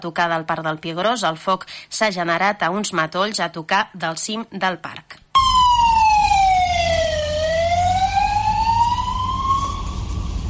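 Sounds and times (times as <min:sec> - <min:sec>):
speech: 0:00.0 - 0:05.2
fire engine siren wailing at a brush fire: 0:05.4 - 0:10.4
low rumble: 0:06.8 - 0:10.4.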